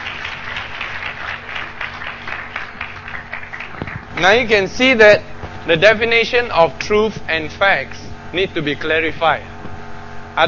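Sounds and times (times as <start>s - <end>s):
congregation clapping and applauding: 0.0s - 4.5s
speech: 4.2s - 9.5s.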